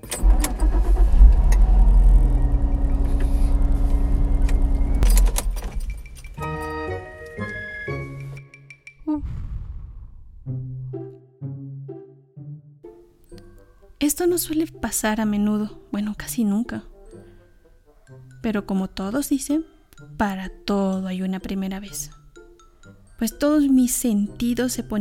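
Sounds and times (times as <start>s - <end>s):
car engine rumbling and cutting out: 0.0s - 5.6s
speech: 14.2s - 16.9s, 18.4s - 22.2s, 23.2s - 24.9s.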